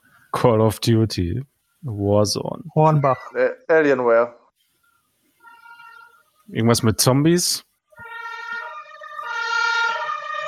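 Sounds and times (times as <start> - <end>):
speech: 0.4 - 4.4, 6.5 - 7.7
two-tone ambulance siren wailing: 5.4 - 6.2, 8.0 - 10.4.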